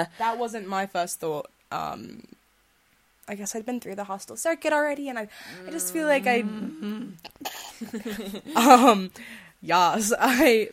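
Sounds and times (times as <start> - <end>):
speech: 0.0 - 2.4, 3.3 - 10.7
person imitating coughing and gagging: 5.7 - 9.0.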